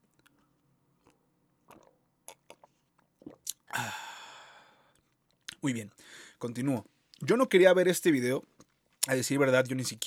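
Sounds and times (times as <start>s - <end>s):
person sipping water and swallowing: 0.2s - 5.6s
speech: 5.6s - 8.5s, 9.1s - 10.0s.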